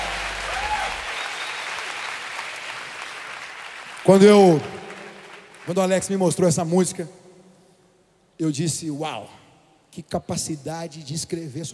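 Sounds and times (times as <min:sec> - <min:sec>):
crowd applause: 0:00.0 - 0:06.0
speech: 0:04.0 - 0:04.8, 0:05.6 - 0:07.2, 0:08.4 - 0:11.7.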